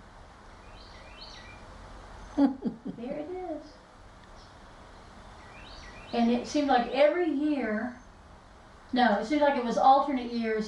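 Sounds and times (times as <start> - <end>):
steady low outdoor hum: 0.0 - 10.6
faint bird chirps outdoors: 0.6 - 2.6, 4.3 - 6.9, 7.7 - 8.2
speech: 2.4 - 3.8, 6.1 - 8.0, 8.9 - 10.6.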